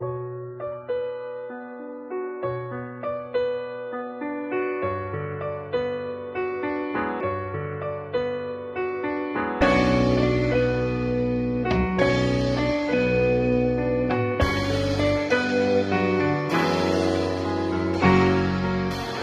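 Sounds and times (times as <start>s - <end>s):
sad piano loops: 0.0s - 19.2s
sad guitar loops: 9.6s - 19.2s.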